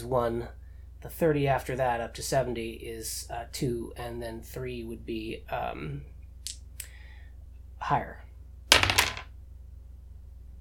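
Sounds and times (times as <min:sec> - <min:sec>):
speech: 0:00.0 - 0:06.1, 0:07.8 - 0:08.2
dice rolling on a hard tabletop: 0:08.7 - 0:09.3.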